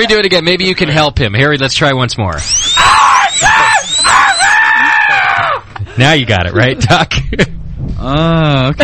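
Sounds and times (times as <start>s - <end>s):
speech: 0.0s - 3.6s, 6.0s - 8.8s
person screaming long piercing shrieks: 2.7s - 5.6s.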